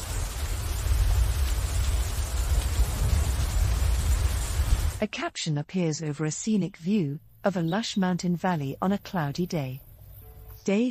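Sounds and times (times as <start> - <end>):
steady rain pouring on forest foliage: 0.0 - 5.0
speech: 5.0 - 9.9, 10.6 - 10.8.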